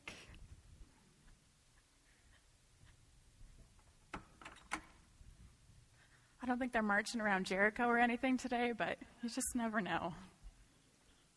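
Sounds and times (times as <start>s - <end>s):
door latch clicks: 4.1s - 5.0s
speech: 6.4s - 10.3s.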